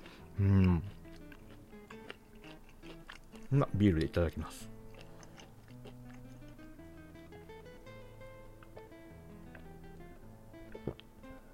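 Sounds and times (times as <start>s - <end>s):
person chewing a slice of salami: 0.0s - 6.9s, 8.5s - 10.0s
speech: 0.4s - 0.9s, 3.5s - 4.8s.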